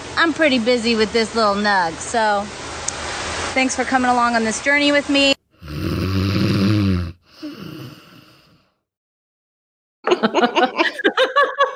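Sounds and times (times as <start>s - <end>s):
speech: 0.2s - 2.6s, 3.6s - 5.4s
loud rasping snore: 5.6s - 8.7s
choppy laughter-like bursts: 10.1s - 11.7s.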